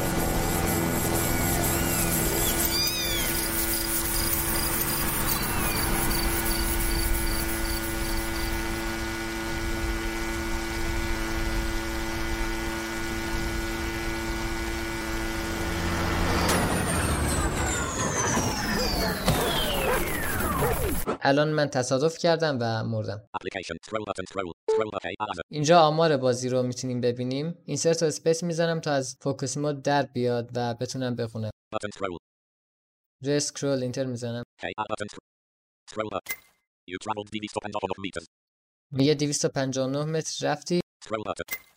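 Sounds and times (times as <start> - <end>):
video game electronic engine drone: 0.0 - 21.1
speech: 21.3 - 32.2, 33.2 - 35.3, 35.9 - 41.7.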